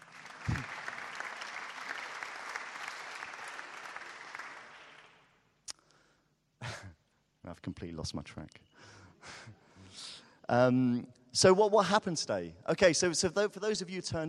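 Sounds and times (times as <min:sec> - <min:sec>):
audience applause: 0:00.0 - 0:05.3
speech: 0:07.6 - 0:08.8, 0:10.5 - 0:14.2.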